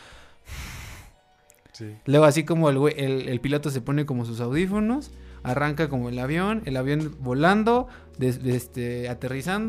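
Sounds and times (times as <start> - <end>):
voice imitating heavy breathing of a man climbing: 0.0 - 1.2
speech: 1.8 - 9.6.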